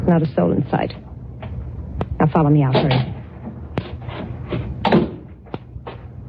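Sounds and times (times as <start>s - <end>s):
speech: 0.1s - 1.0s, 2.2s - 3.2s
heavy cellar door thudding and knocking: 4.8s - 5.3s.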